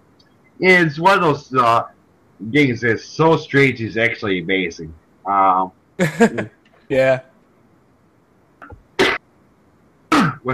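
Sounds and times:
speech: 0.6s - 7.3s
coughing: 6.0s - 6.5s, 9.0s - 9.2s, 10.1s - 10.5s
laughter: 6.0s - 6.5s
softer catch in the throat: 10.1s - 10.4s.

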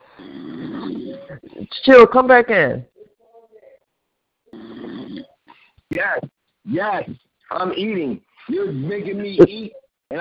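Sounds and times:
snoring over a thin tinny phone line: 0.0s - 1.7s, 4.5s - 5.4s
speech: 0.2s - 2.9s, 6.0s - 10.1s.

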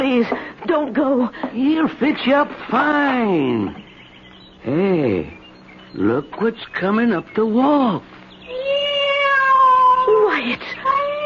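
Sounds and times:
speech: 0.0s - 3.8s, 4.6s - 8.7s, 10.4s - 10.8s
cat meowing: 8.5s - 10.1s.

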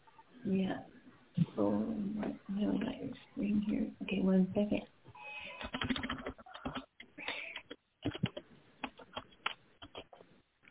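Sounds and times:
speech: 0.4s - 1.0s, 1.6s - 5.0s
rapid keyboard typing: 5.6s - 6.9s, 7.5s - 10.2s.

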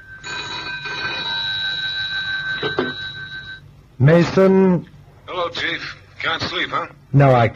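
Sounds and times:
bedside telephone bell ringing at night: 0.0s - 3.7s
speech: 2.6s - 3.1s, 4.0s - 4.9s, 5.5s - 7.5s.

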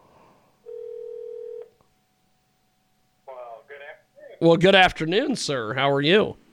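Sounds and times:
faint hum: 0.0s - 6.5s
telephone line tone as a phone call is placed: 0.7s - 1.7s
speech: 4.4s - 6.4s.

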